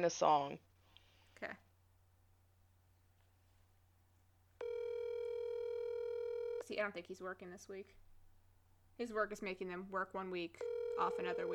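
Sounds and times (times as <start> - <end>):
speech: 0.0 - 0.7, 1.4 - 1.6, 6.7 - 8.0, 9.0 - 11.5
electronic ringing tone of an outgoing phone call: 4.6 - 6.8, 10.6 - 11.5.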